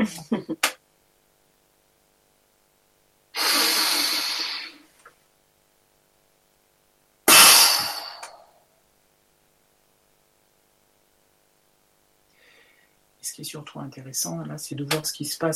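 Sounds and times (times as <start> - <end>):
forceful exhale through the mouth after a muscle contraction: 3.4 - 4.9, 7.3 - 8.4
speech: 13.3 - 15.5.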